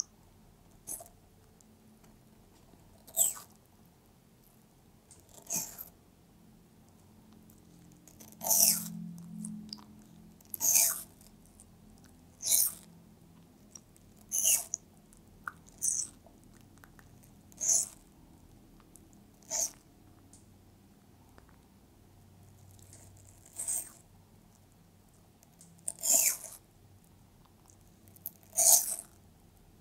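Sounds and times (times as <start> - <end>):
soft faint chewing: 0.0 - 6.0, 6.8 - 21.8, 22.4 - 29.7
pet tortoise crunching watermelon: 2.6 - 3.6, 5.1 - 6.0, 7.3 - 20.3, 25.4 - 26.6, 27.4 - 29.3.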